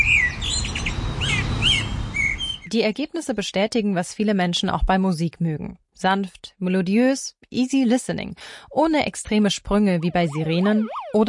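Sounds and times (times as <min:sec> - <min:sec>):
Eurasian blackbird singing: 0:00.0 - 0:02.7
speech: 0:02.7 - 0:11.2.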